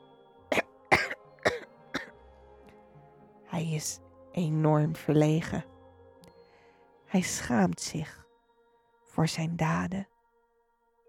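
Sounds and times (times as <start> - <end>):
person coughing: 0.5 - 2.1
speech: 3.6 - 5.7, 7.1 - 8.2, 9.2 - 10.1.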